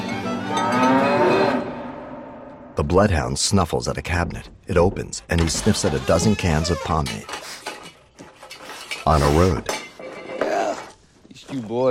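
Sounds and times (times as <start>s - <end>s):
farm cow mooing: 0.5s - 1.9s
speech: 2.8s - 7.4s, 9.0s - 9.8s, 11.5s - 11.8s.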